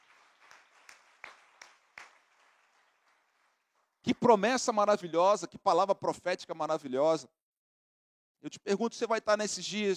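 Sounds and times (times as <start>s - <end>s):
audience applause: 0.0s - 4.0s
speech: 4.1s - 7.4s, 8.4s - 9.9s.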